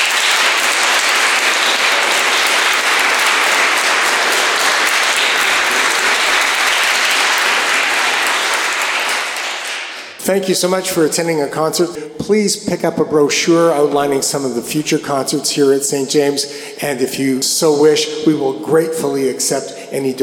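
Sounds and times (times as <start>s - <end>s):
audience applause after an afternoon recital: 0.0s - 10.2s
speech: 10.3s - 20.2s.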